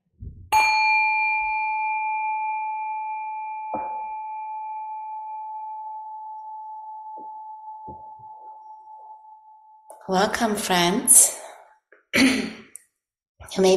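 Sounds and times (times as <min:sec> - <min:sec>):
meditation bell being struck: 0:00.6 - 0:09.9
speech: 0:10.1 - 0:11.4, 0:13.6 - 0:13.7.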